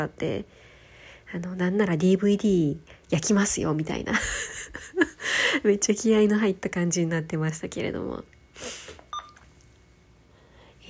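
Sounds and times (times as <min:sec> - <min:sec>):
speech: 0:00.0 - 0:00.7, 0:01.3 - 0:08.8
faint steady hum: 0:00.0 - 0:10.8
electronic beep from a button pressed by accident: 0:09.1 - 0:09.4.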